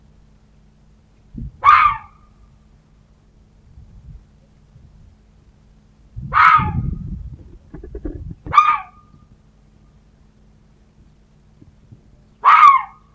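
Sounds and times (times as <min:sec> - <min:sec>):
red fox rasping barks: 0:01.6 - 0:02.2, 0:06.3 - 0:06.9, 0:07.7 - 0:09.1, 0:12.4 - 0:13.1
soft low thumps: 0:06.2 - 0:08.6.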